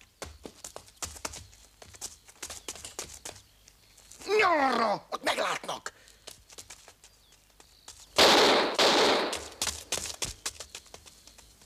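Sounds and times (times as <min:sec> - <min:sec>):
speech: 0:04.5 - 0:06.0
gunfire: 0:08.2 - 0:09.5.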